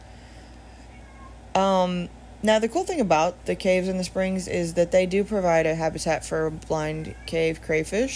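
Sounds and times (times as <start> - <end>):
steady low hum: 0.0 - 8.1
speech: 1.6 - 8.1
cat meowing: 7.0 - 7.6.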